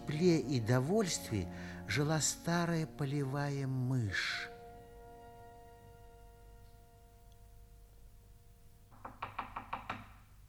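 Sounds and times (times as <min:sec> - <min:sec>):
speech: 0:00.1 - 0:04.5
sharp knocks on a door: 0:08.9 - 0:10.3.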